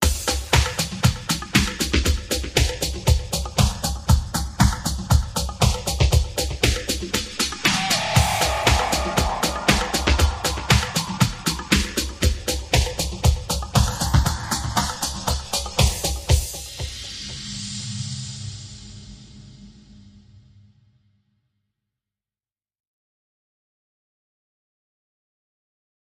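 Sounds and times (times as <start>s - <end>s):
lounge drums: 0.0s - 17.5s
sound effects: 7.3s - 12.1s.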